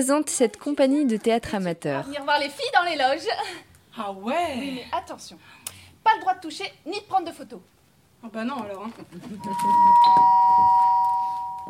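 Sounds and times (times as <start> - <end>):
speech: 0.0 - 10.8
electronic doorbell ringing backstage near theatre dressing rooms: 9.4 - 11.6.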